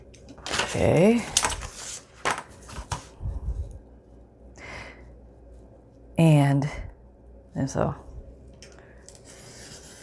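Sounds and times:
paper rustling while handled: 0.3 - 3.2
speech: 0.7 - 1.4, 7.6 - 8.1.

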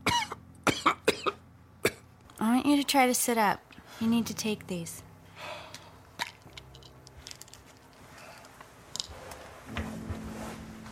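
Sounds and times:
sick person coughing harshly: 0.0 - 2.0
speech: 2.7 - 5.1.

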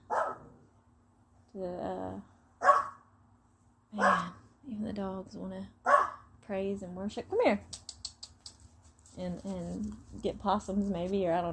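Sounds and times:
dog barking: 0.0 - 0.5, 2.6 - 3.0, 4.0 - 4.4, 5.8 - 6.3
speech: 1.5 - 2.3, 4.8 - 7.8, 9.2 - 11.5.

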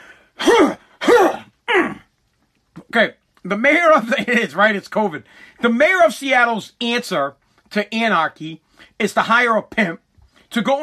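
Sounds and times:
harsh throat clearing to dislodge a swallowed bug: 0.4 - 2.1
speech: 2.9 - 10.8.

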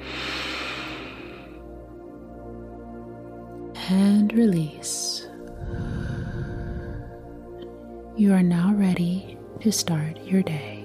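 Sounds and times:
deep breath in at the close of a guided meditation: 0.0 - 1.7, 5.5 - 7.9
speech: 3.9 - 5.9, 8.2 - 10.7.

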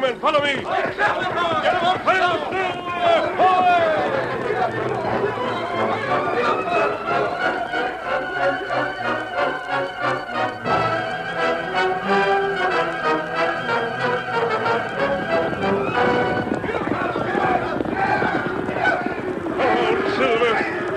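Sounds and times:
speech: 0.0 - 3.4
galloping cattle hooves in a stampede: 0.0 - 20.9
steady tonal backdrop: 4.6 - 17.7.

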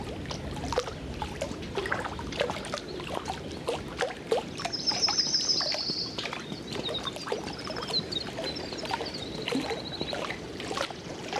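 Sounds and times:
water noise: 0.0 - 11.3
winter wren singing: 4.7 - 6.2.

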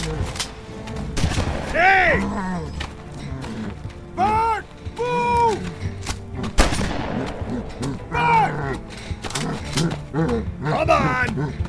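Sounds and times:
gunshot fired point-blank at the face of a charging creature: 1.2 - 1.8, 6.6 - 7.6
charging creature bellowing and groaning: 2.0 - 6.6, 7.2 - 11.6.

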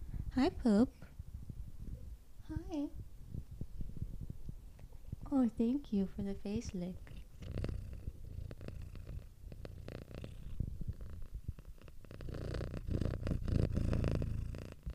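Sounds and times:
soft crackly textures: 0.3 - 14.9
speech: 0.4 - 1.1, 2.5 - 3.0, 5.3 - 7.6
cat purring: 0.8 - 14.9.

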